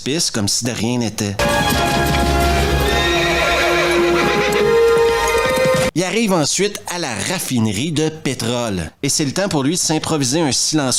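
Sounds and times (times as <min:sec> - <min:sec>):
speech: 0:00.0 - 0:02.5, 0:06.0 - 0:10.9
horse hooves clopping: 0:01.4 - 0:05.9.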